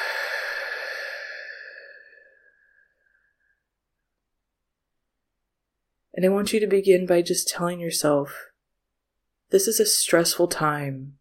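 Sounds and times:
deep breath exhaled during a guided calming exercise: 0:00.0 - 0:03.5
speech: 0:06.2 - 0:08.5, 0:09.5 - 0:11.2.

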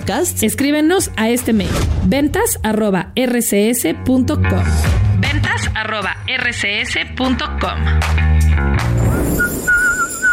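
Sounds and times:
speech: 0:00.1 - 0:05.0, 0:05.6 - 0:08.2
whistling: 0:09.0 - 0:10.3.

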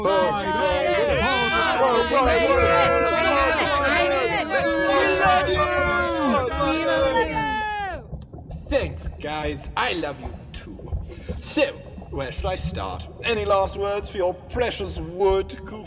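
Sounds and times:
dense crowd cheering and whooping: 0:00.0 - 0:08.0
speech: 0:09.2 - 0:10.8, 0:11.4 - 0:15.8.

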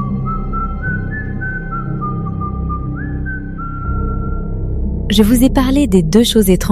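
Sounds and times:
lone whistled tune: 0:00.0 - 0:04.7
speech: 0:05.1 - 0:06.6.

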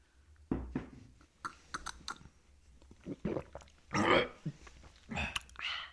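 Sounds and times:
person gulping and swallowing a drink: 0:01.4 - 0:05.6
mouth smacking noises: 0:01.4 - 0:05.7.

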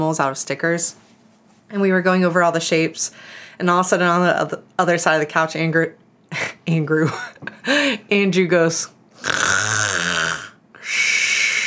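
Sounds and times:
speech: 0:00.0 - 0:01.1, 0:01.7 - 0:09.4
breathy hissing exhale: 0:09.2 - 0:11.6
person imitating loud snoring: 0:09.2 - 0:11.6.

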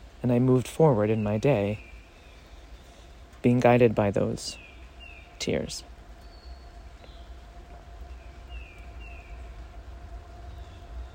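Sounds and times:
speech: 0:00.2 - 0:01.9, 0:03.4 - 0:04.7, 0:05.4 - 0:05.9
passing train rumbling: 0:03.3 - 0:11.1.

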